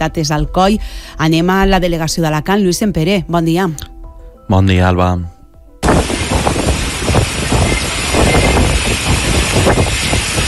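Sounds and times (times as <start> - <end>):
speech: 0.0 - 3.9, 4.5 - 6.1
storm wind roaring during a short intense storm: 5.8 - 10.4.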